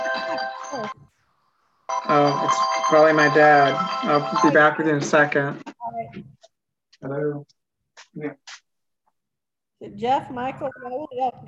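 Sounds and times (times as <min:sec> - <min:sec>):
speech: 0:00.7 - 0:01.0, 0:02.1 - 0:06.3, 0:07.0 - 0:07.6, 0:08.2 - 0:08.6, 0:09.8 - 0:11.4
bright tonal electronic phone ringtone: 0:01.9 - 0:05.5.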